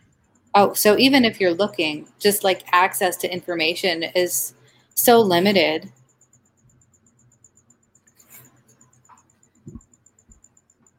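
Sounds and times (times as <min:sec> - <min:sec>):
crickets chirping: 0:00.0 - 0:10.9
speech: 0:00.5 - 0:06.0
soft low thumps: 0:09.6 - 0:10.4.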